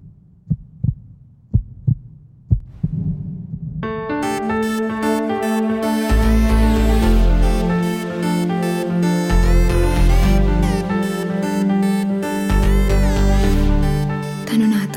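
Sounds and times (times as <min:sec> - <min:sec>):
heartbeat thumping: 0:00.0 - 0:03.9
swelling music: 0:03.8 - 0:14.9.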